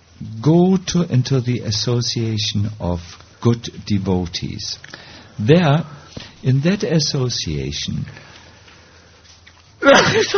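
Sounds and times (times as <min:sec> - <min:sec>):
speech: 0:00.3 - 0:08.3, 0:09.8 - 0:10.3
sneeze: 0:09.8 - 0:10.3.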